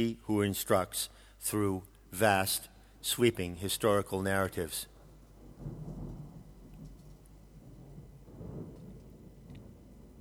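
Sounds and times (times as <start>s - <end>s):
speech: 0.0s - 4.9s
deep rolling thunder over the reed valley of the Guadiaro River: 4.9s - 10.1s
torrential rain over the reed valley of the Guadiaro River: 4.9s - 10.1s.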